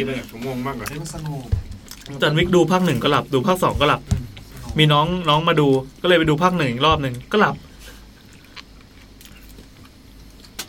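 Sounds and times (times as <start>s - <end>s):
speech: 0.0s - 4.2s, 4.8s - 7.7s
chewing meatballs: 0.1s - 3.1s, 8.1s - 10.6s.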